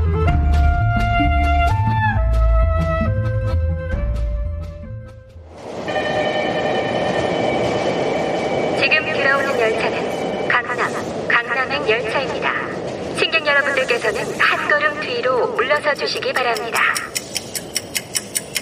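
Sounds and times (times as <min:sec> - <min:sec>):
subway train pulling into a station: 0:00.0 - 0:18.5
rapid clicking: 0:13.9 - 0:18.5.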